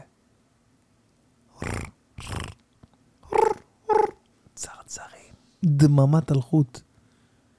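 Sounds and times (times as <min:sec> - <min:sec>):
man imitating roaring and shouting into a microphone: 0:03.2 - 0:04.2
speech: 0:04.9 - 0:06.9.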